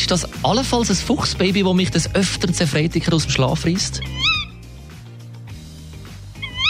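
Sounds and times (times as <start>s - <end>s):
speech: 0.0s - 4.3s
tawny owl calling at night: 4.0s - 4.6s, 6.4s - 6.6s.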